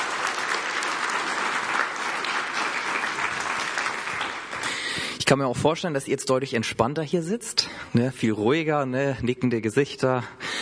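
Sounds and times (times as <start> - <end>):
room full of people applauding: 0.0 - 5.0
speech: 5.3 - 10.4.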